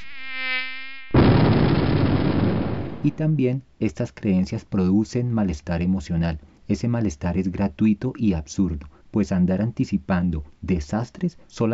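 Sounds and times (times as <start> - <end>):
high-pitched mosquito whine: 0.0 - 2.8
loud booming blast with rough rumble: 1.2 - 3.3
speech: 3.0 - 11.7.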